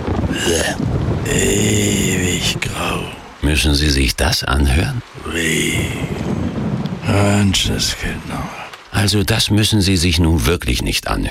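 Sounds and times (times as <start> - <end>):
low rumble: 0.0 - 4.0, 4.6 - 9.0
rain falling in a dense hiss: 0.0 - 11.3
speech: 0.7 - 6.1, 7.1 - 11.3.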